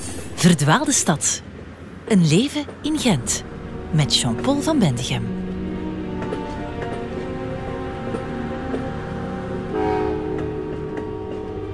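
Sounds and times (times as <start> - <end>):
trains at a railway station in Ghent rumbling: 0.0 - 11.7
speech: 0.4 - 1.5, 2.1 - 5.4
horn-like tonal swell: 3.3 - 11.7.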